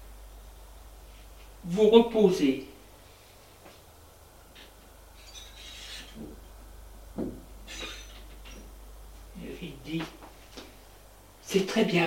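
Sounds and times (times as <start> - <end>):
steady low hum: 0.0 - 12.0
speech: 1.6 - 2.7, 11.8 - 12.0
door scraping open: 5.2 - 6.4.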